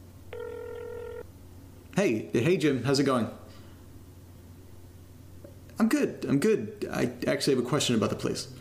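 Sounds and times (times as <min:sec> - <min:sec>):
low hum: 0:00.0 - 0:08.5
telephone ring tone over a telephone line: 0:00.3 - 0:01.3
speech: 0:02.0 - 0:03.4, 0:05.8 - 0:08.5.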